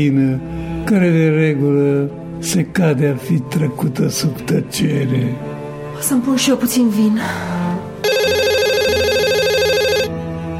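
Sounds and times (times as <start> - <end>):
speech: 0.0 - 7.6
mobile phone electronic ringtone: 8.0 - 10.2.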